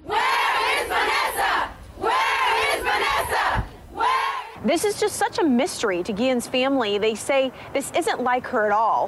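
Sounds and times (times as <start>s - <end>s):
large rally crowd chanting a name in unison: 0.0s - 4.6s
speech: 4.6s - 9.0s.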